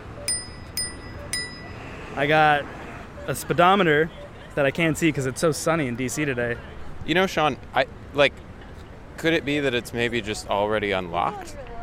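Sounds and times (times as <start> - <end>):
faint outdoor noise: 0.0 - 11.8
small handlebar bell on a motorized scooter ringing outdoors in Washington, D.C.: 0.2 - 2.0
speech: 2.2 - 8.4, 9.2 - 11.7.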